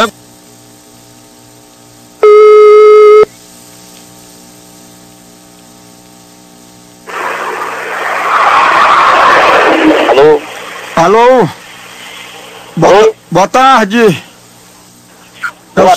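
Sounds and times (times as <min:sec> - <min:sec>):
faint telephone line hum: 0:00.0 - 0:15.9
loud rough static hiss: 0:00.0 - 0:15.9
telephone ringing tone while a call is placed: 0:02.2 - 0:03.3
speech: 0:11.0 - 0:11.6, 0:12.8 - 0:14.3.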